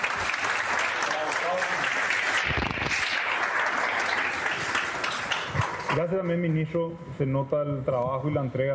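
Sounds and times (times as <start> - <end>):
audience applause: 0.0 - 6.3
speech: 6.0 - 8.7.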